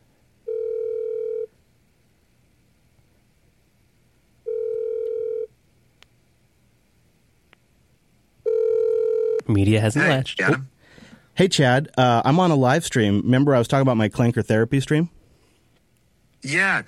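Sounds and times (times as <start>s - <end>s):
phone line ringing tone: 0.4s - 1.5s, 4.4s - 5.5s, 8.4s - 9.5s
speech: 9.5s - 10.7s, 11.4s - 15.2s, 16.4s - 16.8s.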